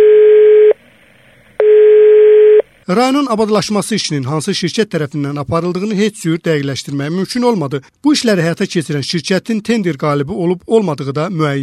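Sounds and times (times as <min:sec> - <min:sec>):
electronic call tone from an unanswered mobile phone call: 0:00.0 - 0:00.8, 0:01.6 - 0:02.7
speech: 0:02.9 - 0:11.6.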